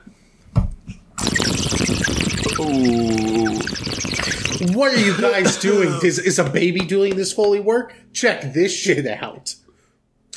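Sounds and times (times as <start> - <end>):
water spilling and splattering out of a person's mouth: 1.2 - 5.4
soft wet sputters from a person's mouth: 1.2 - 5.5
speech: 2.6 - 3.0, 4.7 - 9.6.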